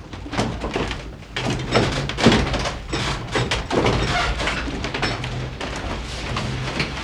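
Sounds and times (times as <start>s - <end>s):
windmill drive gearwork turning: 0.5s - 6.9s.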